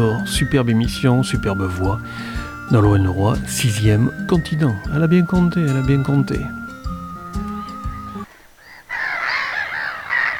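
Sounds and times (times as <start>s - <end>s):
speech: 0.0s - 6.6s
short burst of musical tones: 0.0s - 8.3s
flock of seagulls calling: 0.0s - 10.3s.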